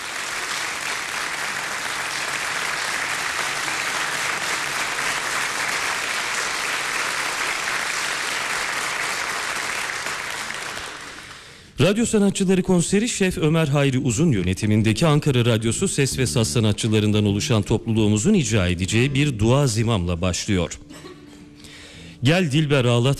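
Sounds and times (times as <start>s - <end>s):
audience applause at a folk song concert welcoming a conductor: 0.0s - 11.5s
speech: 11.8s - 21.1s, 22.2s - 23.1s.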